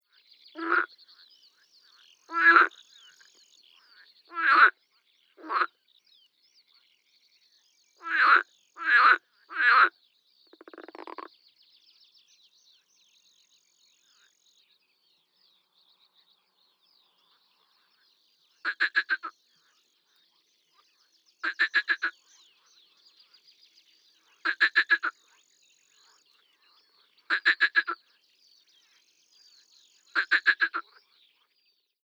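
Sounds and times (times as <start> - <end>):
Rana ridibunda: 0.0 - 6.0, 8.0 - 11.4, 13.5 - 14.8, 18.6 - 23.4, 24.2 - 29.0, 30.0 - 31.5.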